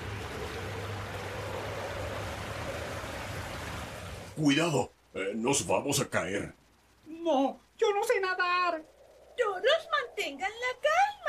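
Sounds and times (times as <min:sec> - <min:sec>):
stormy water waves hitting a boat: 0:00.0 - 0:04.4
speech: 0:04.4 - 0:06.6, 0:07.2 - 0:11.2.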